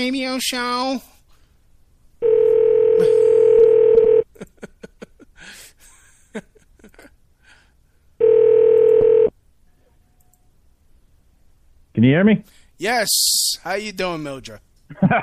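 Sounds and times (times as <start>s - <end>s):
speech: 0.0s - 1.1s, 12.0s - 15.2s
telephone call ring tones through Google Voice: 2.2s - 4.2s, 8.2s - 9.3s
laughter: 4.3s - 7.2s, 14.9s - 15.2s
faint clicks: 10.2s - 10.5s.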